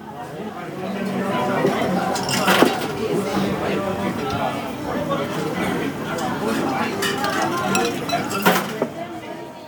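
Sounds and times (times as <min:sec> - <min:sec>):
crowd chatter at a semi-outdoor standing bar: 0:00.0 - 0:09.6
dishes and glasses clinking at a standing bar counter: 0:06.2 - 0:08.9.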